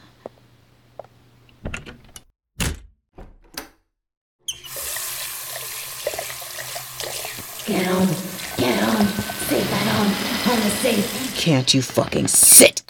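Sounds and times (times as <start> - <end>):
tap water running into a sink for a face wash: 4.5 - 12.5
speech: 7.7 - 8.3, 10.2 - 12.8.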